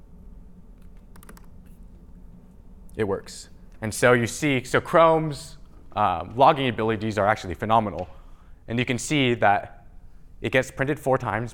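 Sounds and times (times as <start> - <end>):
steady hiss: 0.0 - 11.5
typing on a computer keyboard: 0.8 - 1.5
speech: 3.0 - 9.8, 10.4 - 11.5.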